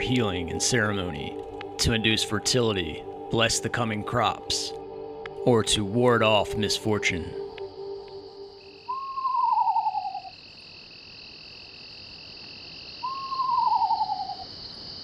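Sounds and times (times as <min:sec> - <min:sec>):
speech: 0:00.0 - 0:04.8, 0:05.4 - 0:07.4
screech owl giving quavering whinny calls in a backyard: 0:00.0 - 0:10.4, 0:13.0 - 0:14.6
steady hum of night insects: 0:00.0 - 0:15.0.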